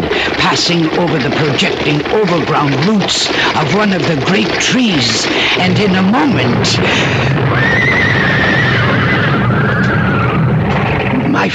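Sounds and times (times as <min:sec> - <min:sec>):
constant rumbling noisy background: 0:00.0 - 0:11.5
speech: 0:00.5 - 0:08.4, 0:11.4 - 0:11.5
panicked horse neighing shrilly: 0:05.0 - 0:11.2.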